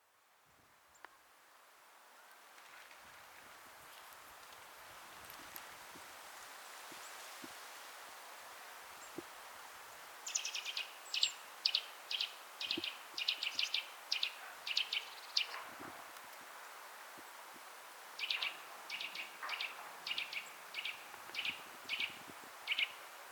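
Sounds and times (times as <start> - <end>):
Eurasian nuthatch short high calls: 10.2 - 15.6, 18.2 - 23.0.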